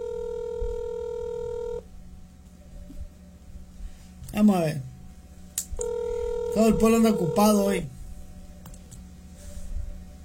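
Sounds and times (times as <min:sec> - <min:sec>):
ringback tone of an outgoing telephone call: 0:00.0 - 0:01.8, 0:05.8 - 0:07.8
speech: 0:04.4 - 0:04.9, 0:06.6 - 0:08.0.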